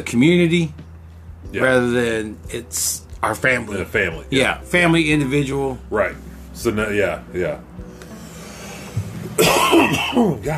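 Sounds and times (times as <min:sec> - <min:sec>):
speech: 0:00.0 - 0:00.8, 0:01.5 - 0:07.7, 0:09.8 - 0:10.5
person coughing harshly: 0:09.4 - 0:10.4.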